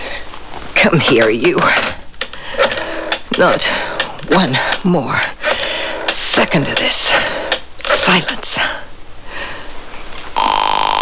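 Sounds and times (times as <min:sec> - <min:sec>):
soft breathy hiss: 0:00.0 - 0:10.4
speech: 0:00.8 - 0:02.0, 0:03.4 - 0:05.4, 0:06.5 - 0:07.0, 0:08.1 - 0:08.4
telephone with trilling electronic ring: 0:00.9 - 0:08.4, 0:10.4 - 0:11.0.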